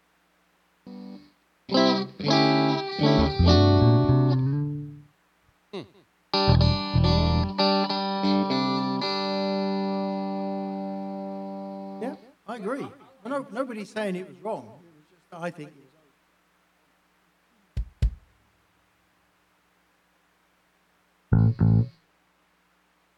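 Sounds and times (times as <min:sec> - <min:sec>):
distorted electric guitar chords: 0:00.9 - 0:05.0, 0:06.4 - 0:12.0, 0:21.3 - 0:22.0
speech: 0:13.8 - 0:14.8, 0:15.4 - 0:15.8.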